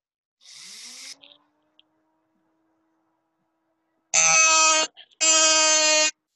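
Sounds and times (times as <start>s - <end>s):
dentist's drill whirring while working on teeth: 0.4s - 1.2s, 4.2s - 6.1s.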